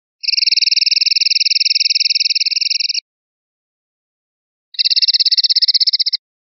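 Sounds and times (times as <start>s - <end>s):
linnet calling: 0.2s - 3.0s, 4.8s - 6.2s.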